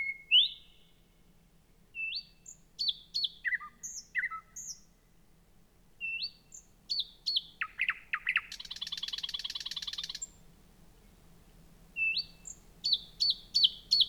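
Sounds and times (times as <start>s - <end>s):
thrush nightingale song: 0.0s - 1.3s, 1.9s - 5.0s, 6.0s - 10.4s, 12.0s - 14.0s.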